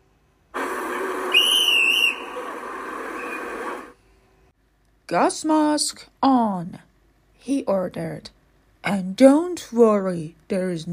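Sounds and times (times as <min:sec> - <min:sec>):
whistle blast: 0:00.6 - 0:03.9
speech: 0:05.1 - 0:10.9.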